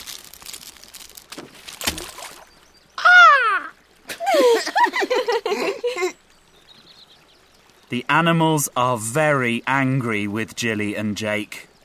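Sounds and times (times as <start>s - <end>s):
crisp packet crumpling: 0.0s - 2.4s
laughter: 4.1s - 6.2s
speech: 7.9s - 11.7s.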